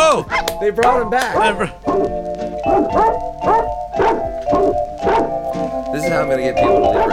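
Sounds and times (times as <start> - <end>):
speech: 0.2 - 3.3, 6.0 - 7.1
dogs barking in yelping bursts: 2.6 - 5.5, 6.6 - 7.1.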